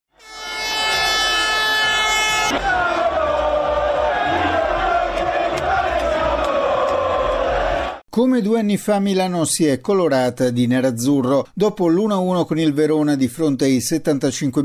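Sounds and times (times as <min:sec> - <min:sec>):
loud sustained horn blaring at victory bus parade: 0:00.1 - 0:06.0
football fans roaring and chanting at victory bus parade: 0:01.3 - 0:08.0
speech: 0:08.2 - 0:14.6.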